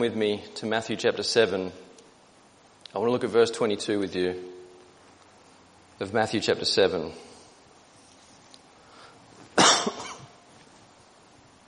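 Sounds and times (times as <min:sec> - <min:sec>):
speech: 0:00.0 - 0:01.9, 0:02.9 - 0:04.6, 0:06.0 - 0:07.3
dry cough: 0:09.6 - 0:10.3.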